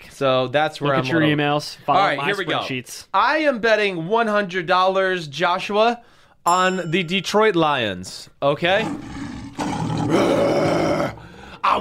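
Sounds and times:
speech: 0.2s - 9.2s, 10.1s - 10.6s
lion roaring: 8.8s - 11.3s.

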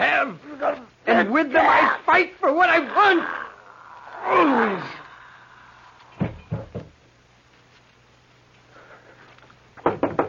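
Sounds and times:
speech: 0.0s - 3.4s, 4.2s - 5.0s
low hum: 3.4s - 9.8s
knocking on a door: 6.2s - 7.0s, 9.8s - 10.2s.

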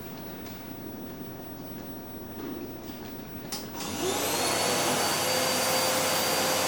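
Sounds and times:
vacuum cleaner running: 3.6s - 6.6s.

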